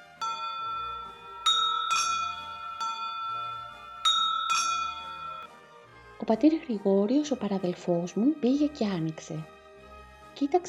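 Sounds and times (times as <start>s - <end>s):
small courtyard gate bell ringing at a monks' hut: 0.0s - 5.5s
speech: 6.3s - 9.6s, 10.4s - 10.6s.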